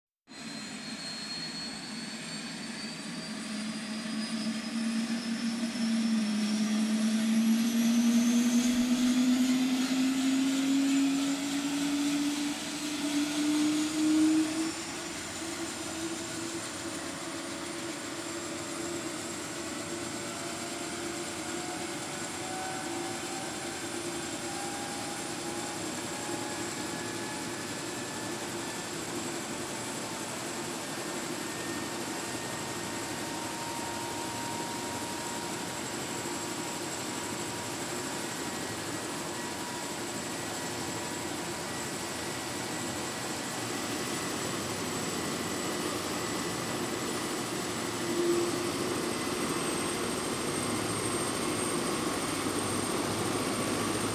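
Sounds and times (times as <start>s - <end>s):
helicopter starting up and taking off: 0.3s - 54.1s.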